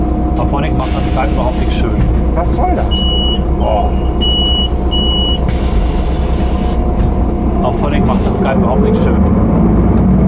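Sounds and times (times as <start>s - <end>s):
sustained hiss of air: 0.0s - 2.6s, 5.5s - 8.5s
bus engine rumble in a bus interior: 0.0s - 10.2s
speech: 0.4s - 4.3s, 7.6s - 10.0s
short electronic beeps: 2.9s - 5.5s.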